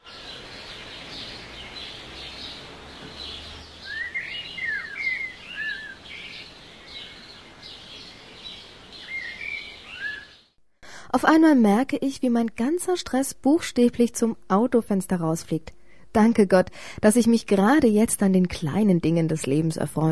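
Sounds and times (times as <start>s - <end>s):
birds chirping and warbling: 0.0s - 10.5s
steady outdoor hiss: 0.0s - 19.8s
speech: 11.2s - 20.1s.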